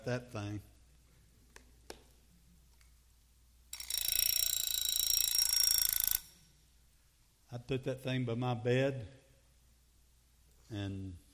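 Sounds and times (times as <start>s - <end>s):
speech: 0.0s - 0.7s, 7.5s - 9.2s, 10.7s - 11.2s
old mechanical alarm clock clicks: 3.7s - 6.4s.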